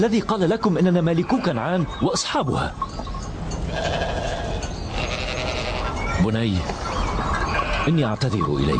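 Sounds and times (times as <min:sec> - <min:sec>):
speech: 0:00.0 - 0:03.1, 0:06.2 - 0:07.0, 0:07.9 - 0:08.7
steady noise: 0:00.0 - 0:08.7
flock of sheep bleating in farm fields: 0:03.7 - 0:06.0.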